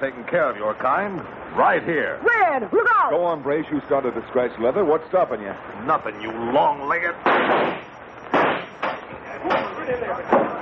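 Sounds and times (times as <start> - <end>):
voices: 0.0 - 7.3, 8.8 - 10.6
speech: 0.0 - 7.9
gunshot knocking the butt off a revolver: 7.3 - 9.0.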